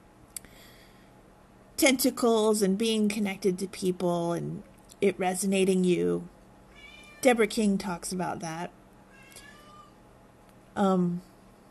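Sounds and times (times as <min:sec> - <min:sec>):
speech: 0:01.8 - 0:06.4, 0:07.2 - 0:08.8, 0:10.8 - 0:11.3
male house cat meowing loudly wanting to play: 0:06.7 - 0:07.2, 0:09.1 - 0:10.0.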